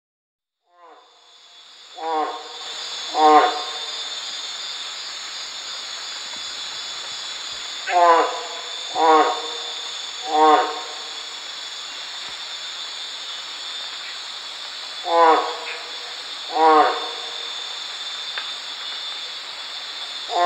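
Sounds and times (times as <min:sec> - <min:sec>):
Phrynohyas resinifictrix frog calling: 0:01.9 - 0:04.5, 0:06.3 - 0:12.2, 0:15.0 - 0:17.9, 0:20.2 - 0:20.4.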